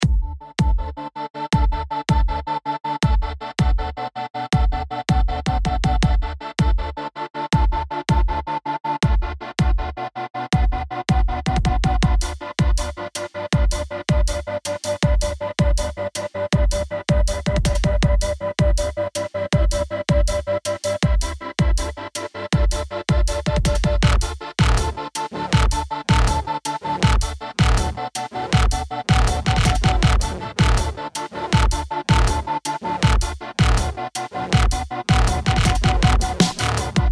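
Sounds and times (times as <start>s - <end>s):
drum and bass beat: 0.0s - 1.0s, 1.6s - 2.4s, 3.0s - 3.9s, 4.6s - 7.0s, 7.6s - 9.9s, 10.6s - 37.0s.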